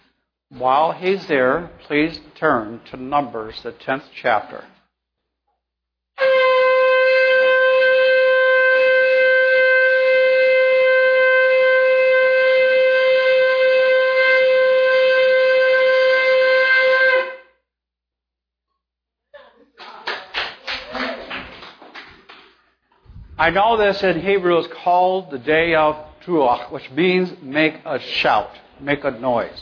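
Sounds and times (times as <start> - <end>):
speech: 0.5 - 4.8, 23.4 - 29.6
long steady horn blast at a religious gathering: 6.2 - 17.6.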